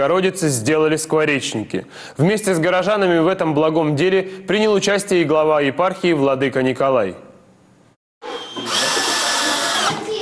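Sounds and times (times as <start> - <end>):
speech: 0.0 - 7.2
electric drills whirring: 8.2 - 10.1.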